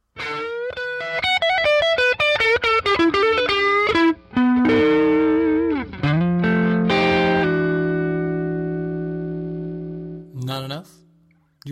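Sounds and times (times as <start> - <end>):
electric guitar through a 15-watt EL84 tube amp with overdriven chords: 0.1 - 10.3.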